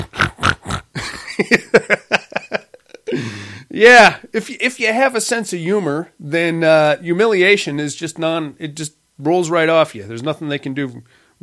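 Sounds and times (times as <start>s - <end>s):
human voice imitating a pig oinking with nasal grunts: 0.0s - 1.0s
speech: 3.8s - 11.4s.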